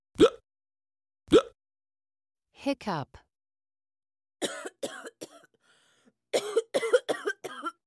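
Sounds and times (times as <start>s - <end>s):
speech: 2.6s - 3.2s
harsh coughing: 4.4s - 5.6s, 6.3s - 7.8s.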